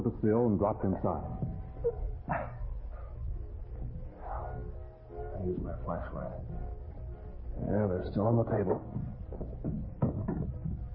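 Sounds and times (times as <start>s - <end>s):
speech: 0.0s - 2.1s, 5.4s - 6.6s, 7.6s - 9.9s
low rumbling background: 0.0s - 10.9s
person bumping into a wooden chair: 8.7s - 10.9s.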